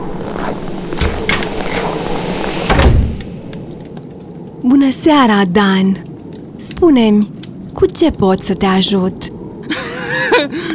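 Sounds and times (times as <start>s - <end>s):
house door opening as someone enters: 0.9s - 4.0s
heavy thump: 1.0s - 3.6s
door clunks and rattling slide: 1.0s - 3.9s
speech: 4.9s - 6.1s, 6.8s - 9.3s
laughter: 9.6s - 10.7s.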